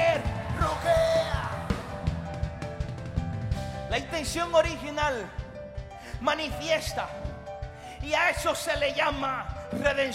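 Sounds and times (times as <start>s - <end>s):
audience member shouting in a large space: 0.0s - 2.0s
music in a large space: 0.0s - 10.1s
speech: 3.9s - 5.4s, 6.2s - 7.3s, 8.0s - 10.1s.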